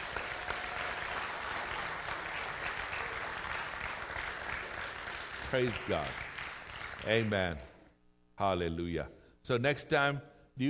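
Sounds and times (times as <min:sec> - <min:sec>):
church audience clapping: 0:00.0 - 0:07.9
speech: 0:05.5 - 0:06.3, 0:07.0 - 0:07.7, 0:08.4 - 0:10.6.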